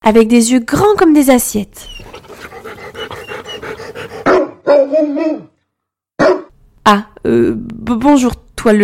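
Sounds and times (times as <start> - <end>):
speech: 0.1 - 2.2, 6.9 - 8.8
large dog panting: 1.8 - 4.6
large dog barking: 2.0 - 5.5, 6.2 - 6.5.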